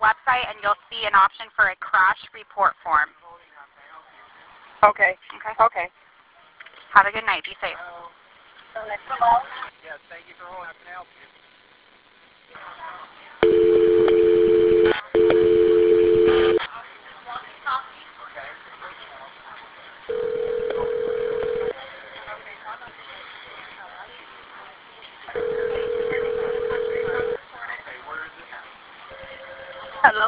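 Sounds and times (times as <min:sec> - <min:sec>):
faint murmur: 0:00.0 - 0:30.2
speech: 0:00.4 - 0:03.2, 0:04.8 - 0:06.0, 0:06.9 - 0:08.0, 0:08.8 - 0:11.4
two-tone telephone ringback on a call-back line: 0:13.4 - 0:16.6, 0:20.1 - 0:21.8, 0:25.4 - 0:27.4.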